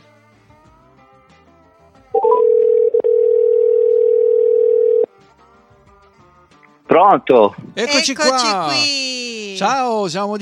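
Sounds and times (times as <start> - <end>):
phone dial tone of an outgoing call: 2.2 - 5.1
speech: 7.0 - 10.4.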